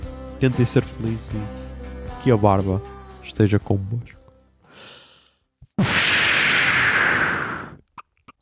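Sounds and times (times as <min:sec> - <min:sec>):
speech: 0:00.4 - 0:04.2
rushing hiss: 0:05.8 - 0:07.8
smoke bomb puff: 0:05.8 - 0:07.8.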